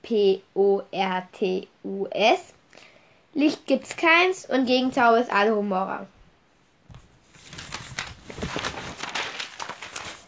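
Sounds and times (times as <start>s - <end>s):
speech: 0.1s - 6.2s
crisp rustling and crinkling: 6.8s - 10.2s.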